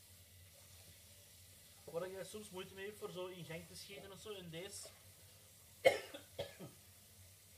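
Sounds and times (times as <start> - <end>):
speech: 2.0 - 5.0
person coughing from a throat tickle: 5.8 - 6.8.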